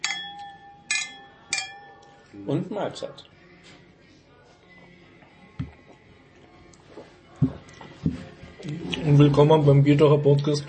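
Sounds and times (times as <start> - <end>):
beer glasses clinking together in a toast: 0.0 - 2.2
speech: 2.3 - 3.4, 9.2 - 10.6.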